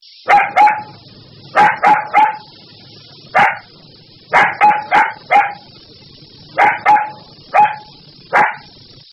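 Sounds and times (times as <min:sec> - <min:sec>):
puppy barking: 0:00.3 - 0:02.5, 0:03.3 - 0:03.7, 0:04.3 - 0:05.7, 0:06.6 - 0:08.7.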